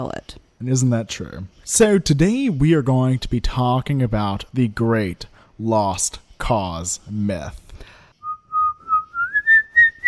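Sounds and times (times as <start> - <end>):
speech: 0.0 - 7.9
person whistling a melody: 8.2 - 10.0.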